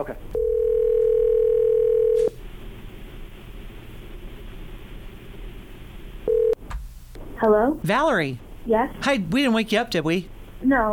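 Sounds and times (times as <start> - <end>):
speech: 0.0 - 0.4, 7.4 - 10.9
ringback tone of an outgoing phone call: 0.4 - 2.3, 6.3 - 6.6.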